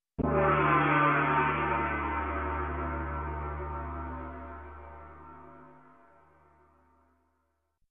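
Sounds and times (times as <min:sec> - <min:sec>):
gong hit: 0:00.2 - 0:05.9.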